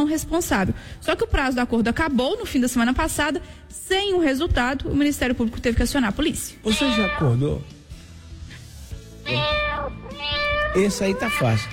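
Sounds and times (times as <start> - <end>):
speech: 0.0 - 7.8, 9.3 - 11.7
cats caterwauling while mating on a house roof: 6.7 - 7.5, 9.2 - 11.7.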